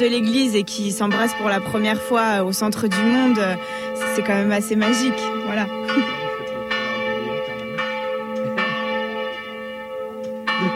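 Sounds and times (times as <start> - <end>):
speech: 0.0 - 6.2
large cathedral church bell tolling: 0.0 - 10.7.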